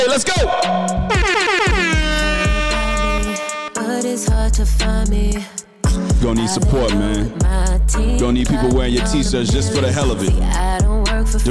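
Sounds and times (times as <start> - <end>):
speech: 0.2 - 1.2, 4.1 - 11.5
DJ-style air horn blasts: 0.5 - 4.0.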